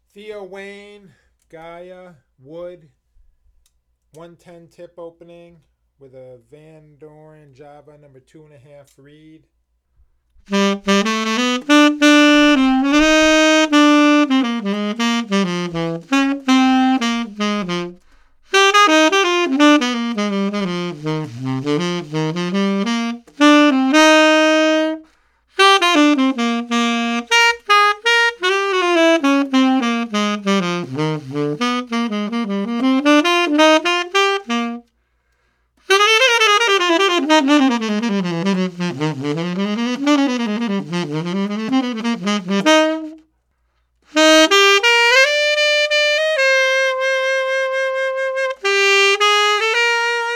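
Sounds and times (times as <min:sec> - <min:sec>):
wooden tenor instrument: 0:10.5 - 0:35.0, 0:35.9 - 0:43.3, 0:44.1 - 0:50.3.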